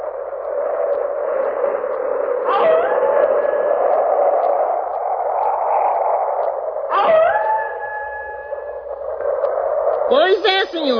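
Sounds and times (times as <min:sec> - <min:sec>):
strong wind roaring: 0:00.0 - 0:10.9
wolves howling: 0:02.3 - 0:10.1
speech: 0:10.7 - 0:10.9.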